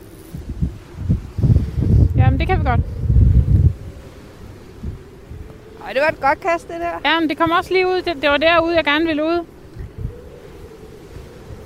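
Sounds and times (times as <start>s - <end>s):
wind buffeting the microphone outdoors at the coast: 0.0s - 11.6s
speech: 2.4s - 3.0s, 5.9s - 9.5s.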